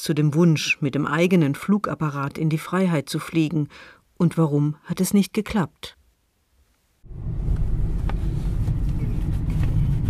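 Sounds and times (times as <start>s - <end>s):
speech: 0.0s - 6.0s
car engine and road noise driving along the edge of the southern Harz: 7.0s - 10.0s.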